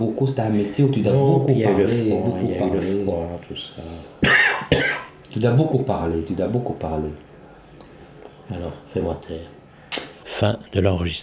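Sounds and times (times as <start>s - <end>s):
speech: 0.0s - 4.2s, 5.3s - 7.3s, 8.5s - 9.6s, 10.4s - 11.2s
person coughing harshly: 4.2s - 5.1s.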